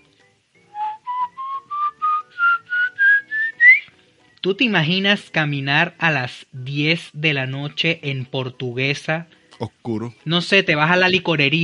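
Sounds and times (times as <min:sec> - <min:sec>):
person whistling an imitation of an eerie call from the Guanarito plains: 0:00.7 - 0:03.9
speech: 0:04.4 - 0:11.6.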